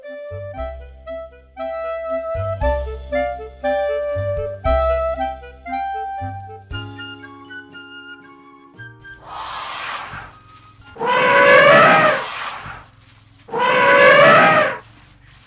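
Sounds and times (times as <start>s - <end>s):
soft music: 0.0s - 9.3s, 10.3s - 11.0s
elephant trumpeting in loud brassy blasts: 11.0s - 12.9s, 13.5s - 14.9s.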